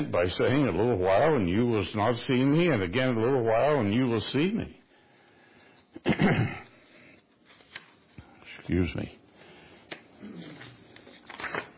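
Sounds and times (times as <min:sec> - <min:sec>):
speech: 0:00.0 - 0:04.8, 0:06.0 - 0:06.6, 0:08.7 - 0:09.2
stuck-together paper sheets cut with a paper cutter being pulled apart: 0:09.8 - 0:11.7.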